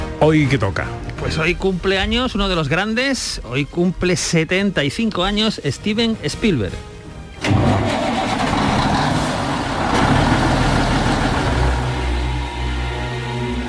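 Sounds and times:
speech: 0:00.2 - 0:06.9
large engine cranking and starting: 0:07.4 - 0:13.5.

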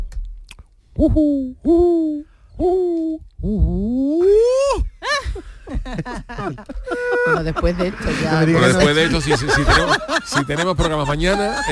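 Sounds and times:
speech: 0:01.0 - 0:04.8, 0:05.9 - 0:11.7
person imitating a hoopoe's call: 0:01.0 - 0:04.9
laughter: 0:05.0 - 0:11.7.

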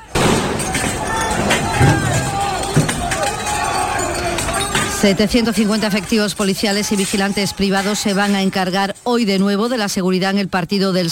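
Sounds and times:
crowd of football fans shouting over each other in a street brawl: 0:00.0 - 0:08.7
scattered thuds and clatters of a street brawl: 0:00.2 - 0:05.0
speech: 0:05.0 - 0:11.0.

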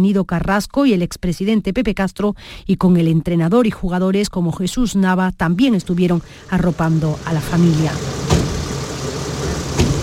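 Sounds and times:
speech: 0:00.0 - 0:08.3
hearse engine running in funeral procession: 0:05.9 - 0:10.0.

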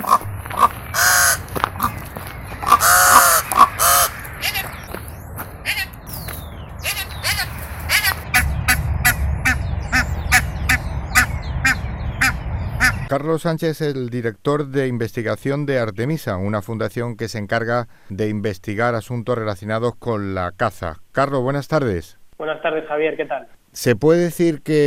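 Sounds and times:
red-billed choughs and ravens calling: 0:00.0 - 0:05.0, 0:05.6 - 0:06.0, 0:06.8 - 0:13.1
low rumbling noise: 0:00.0 - 0:13.2
speech: 0:13.2 - 0:24.8.

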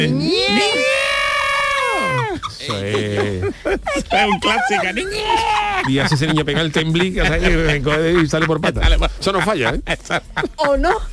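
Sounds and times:
speech: 0:00.0 - 0:00.9, 0:02.7 - 0:11.1
old woman's shrill sustained scream: 0:00.2 - 0:02.5, 0:05.0 - 0:05.9
laughter: 0:01.8 - 0:11.1.

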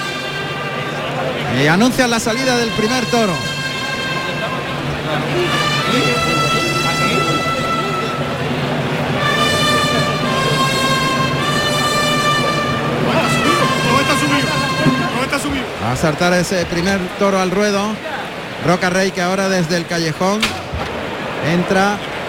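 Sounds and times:
bugles blaring bright fanfare phrases at a bullring: 0:00.0 - 0:17.6
murmur of a large crowd at a bullring: 0:00.0 - 0:22.2
speech: 0:01.6 - 0:03.5, 0:05.1 - 0:06.4, 0:15.3 - 0:20.6, 0:21.4 - 0:22.1
kettledrums at a bullring: 0:03.0 - 0:15.8.

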